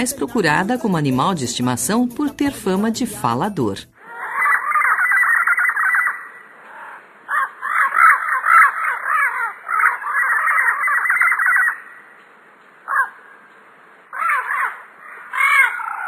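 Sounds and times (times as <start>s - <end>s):
speech: 0.0s - 3.9s
turquoise-fronted amazon parrot squawks: 4.0s - 12.0s, 12.9s - 13.3s, 14.1s - 16.0s.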